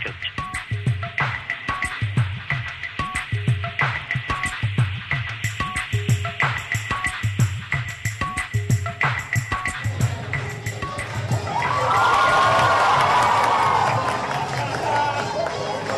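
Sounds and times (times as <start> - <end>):
rhythmic thumping beats: 0.0 - 13.2
students cheering and shouting during a dance in Mumbai: 11.0 - 15.9.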